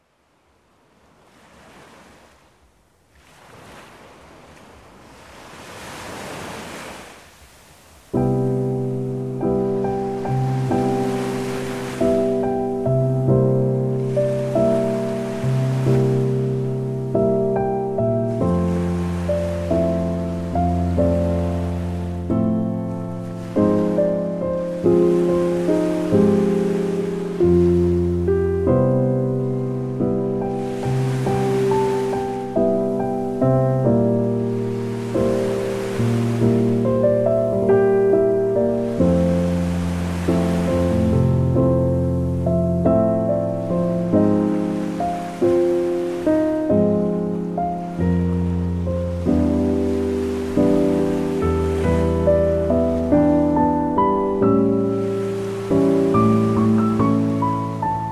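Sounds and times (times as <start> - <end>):
beach waves: 0.0 - 58.1
piano: 8.1 - 58.1.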